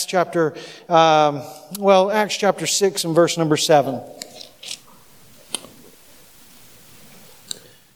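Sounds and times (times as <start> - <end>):
speech: 0.0 - 4.8
audience turning Bible pages: 4.2 - 6.0.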